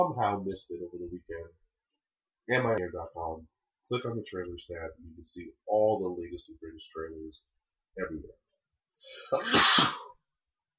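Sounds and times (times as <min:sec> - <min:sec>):
speech: 0:00.0 - 0:01.6, 0:02.5 - 0:08.4, 0:09.0 - 0:10.1
loud sneeze: 0:09.3 - 0:10.2.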